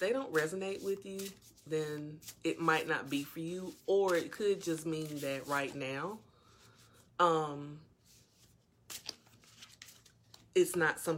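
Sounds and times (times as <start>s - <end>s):
cards being shuffled and drawn from a deck: 0.0s - 5.8s, 8.1s - 10.5s
speech: 0.0s - 6.3s, 7.2s - 7.9s, 10.6s - 11.1s.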